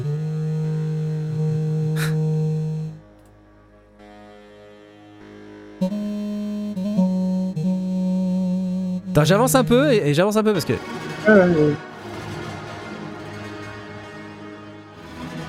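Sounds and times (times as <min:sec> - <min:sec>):
augmented grand piano tones from a software piano instrument: 0:00.0 - 0:04.9, 0:05.5 - 0:12.0
speech: 0:09.2 - 0:11.9.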